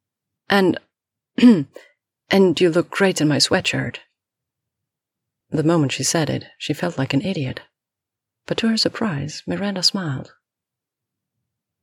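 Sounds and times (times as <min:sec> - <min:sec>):
speech: 0:00.5 - 0:00.8, 0:01.4 - 0:04.1, 0:05.5 - 0:07.7, 0:08.5 - 0:10.4
woman clearing her throat: 0:01.4 - 0:01.9.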